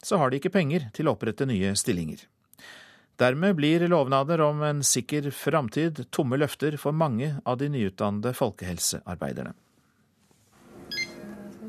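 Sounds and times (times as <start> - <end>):
speech: 0.0 - 9.6
short electronic beep: 10.9 - 11.3.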